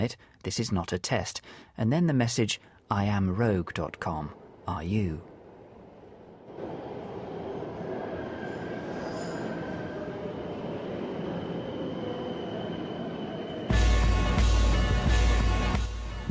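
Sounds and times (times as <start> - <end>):
speech: 0.0 - 5.3
subway train rumble in station: 3.0 - 16.3
busy ambient noise of commuters in station: 3.9 - 13.7
bright screeching of subway train: 8.2 - 10.0.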